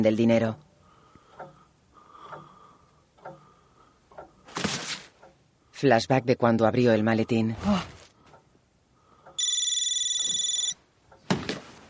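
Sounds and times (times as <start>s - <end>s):
speech: 0.0s - 0.7s, 5.8s - 7.9s
mobile phone warbling electronic ringtone: 9.4s - 10.8s.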